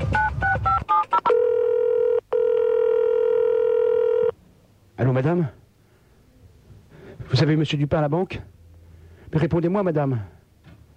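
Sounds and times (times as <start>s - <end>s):
steady continuous telephone line tone: 0.0s - 4.4s
speech: 5.1s - 5.6s, 7.4s - 8.5s, 9.3s - 10.4s.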